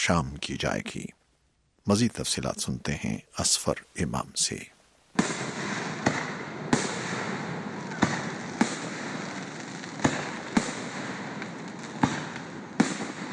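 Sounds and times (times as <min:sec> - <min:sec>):
speech: 0:00.0 - 0:01.2, 0:01.8 - 0:04.8
fireworks bangs at a Fourth of July celebration in a lakeside park in Virginia: 0:05.2 - 0:13.3.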